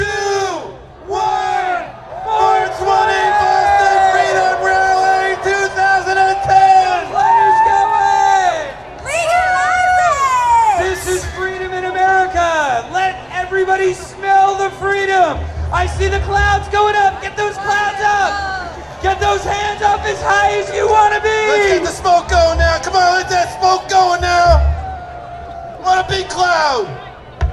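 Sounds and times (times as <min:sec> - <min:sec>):
festival crowd of thousands counting down and cheering: 0:00.0 - 0:27.5
many voices shouting in long sustained yells: 0:01.1 - 0:11.0, 0:17.1 - 0:27.1.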